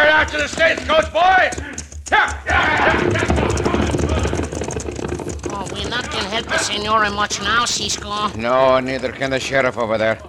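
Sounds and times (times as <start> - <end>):
galloping horse hooves of outlaws riding off on a mountain pass: 0.0 - 7.1
speech: 0.3 - 2.4, 6.4 - 10.2
outlaws shouting: 5.6 - 8.3.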